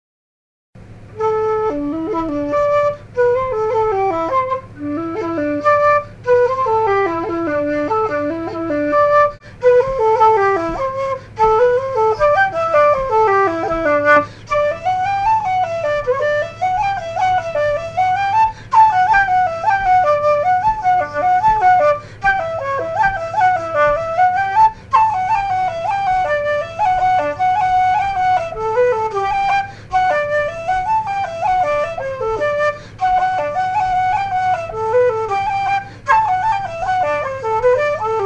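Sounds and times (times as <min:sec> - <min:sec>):
flute: 0:00.8 - 0:38.2.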